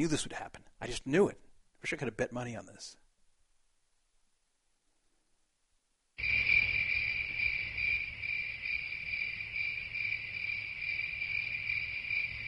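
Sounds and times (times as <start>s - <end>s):
speech: 0.0s - 3.0s
crickets chirping: 6.2s - 12.4s.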